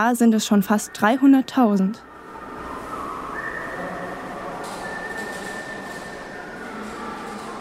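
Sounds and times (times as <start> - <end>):
speech: 0.0 - 2.1
loud constant rumble inside a bicycle tunnel: 0.0 - 7.5
thin sustained whistle in a bicycle tunnel in Baden-Württemberg Germany: 2.6 - 6.6.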